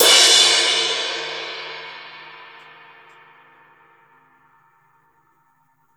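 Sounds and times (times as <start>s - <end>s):
raw acoustic drum crash cymbal: 0.0s - 4.2s.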